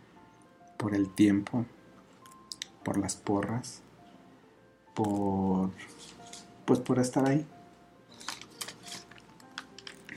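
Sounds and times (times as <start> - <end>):
speech: 0.8 - 1.8, 2.8 - 3.8, 5.0 - 7.6
script pages rustling and tearing: 5.9 - 6.5, 8.1 - 10.1.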